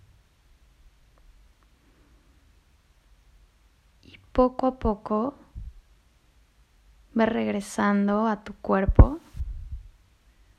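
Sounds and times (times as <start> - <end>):
speech: 4.4 - 5.4, 7.2 - 9.3
soft deep heartbeat thumping: 8.9 - 10.0.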